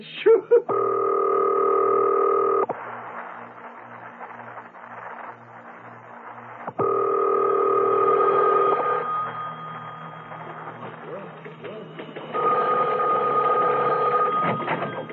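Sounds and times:
rhythmic clicking pulses of a telephone being dialed: 0.6s - 15.1s
telephone being dialed with steady tones: 0.7s - 2.7s, 6.8s - 9.2s, 12.4s - 15.1s.

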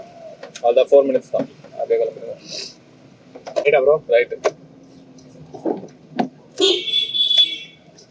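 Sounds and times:
low road rumble: 0.0s - 8.1s
speech: 0.6s - 2.8s, 3.4s - 4.6s
large vehicle horn blaring: 6.6s - 7.8s.

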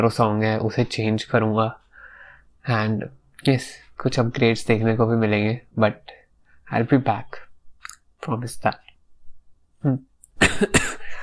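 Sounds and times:
speech: 0.0s - 1.8s, 2.6s - 6.1s, 6.7s - 7.4s, 8.2s - 8.8s, 9.8s - 11.0s
person coughing harshly: 10.4s - 11.2s.

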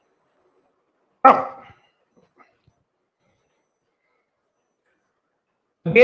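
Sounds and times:
speech: 1.2s - 1.5s
dog barking: 1.2s - 1.8s.

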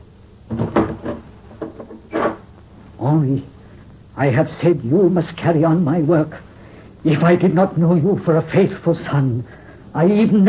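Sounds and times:
door closing with wooden thumps and rattles: 0.5s - 2.4s
speech: 3.0s - 3.6s, 4.2s - 10.4s.

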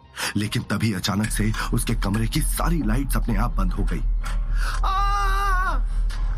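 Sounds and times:
speech: 0.4s - 4.9s
woman screaming in fear: 4.8s - 5.9s.

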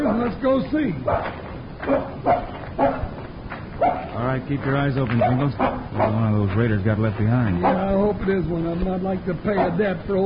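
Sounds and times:
faint hiss: 0.0s - 10.2s
speech: 0.2s - 2.9s, 4.2s - 10.2s
dog barking: 1.0s - 3.2s, 3.8s - 4.2s, 5.2s - 6.3s, 7.6s - 8.0s, 9.5s - 9.9s.

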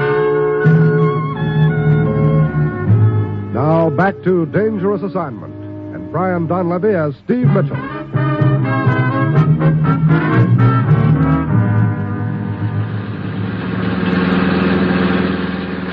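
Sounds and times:
musical passage: 0.0s - 15.9s
speech: 4.0s - 8.0s
car engine idling: 11.6s - 15.9s.

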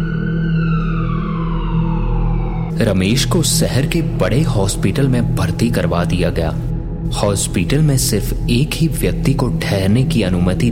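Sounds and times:
ambulance siren wailing: 0.0s - 4.0s
speech: 2.8s - 10.6s.

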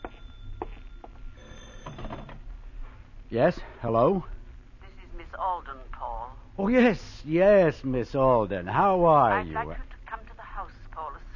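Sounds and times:
telephone bell ringing: 0.0s - 2.4s
speech: 3.3s - 4.3s, 6.6s - 9.9s.

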